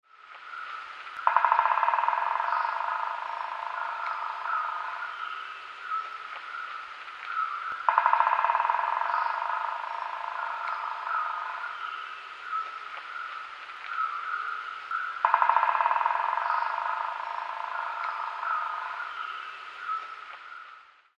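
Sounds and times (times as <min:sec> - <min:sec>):
Crimson-backed Flameback woodpecker drumming: 0:01.2 - 0:06.1, 0:07.3 - 0:13.3, 0:15.0 - 0:19.9.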